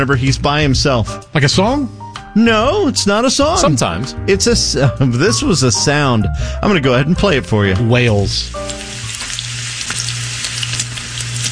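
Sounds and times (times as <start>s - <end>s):
speech: 0.0s - 8.8s
bacon sizzling while frying: 8.0s - 11.5s.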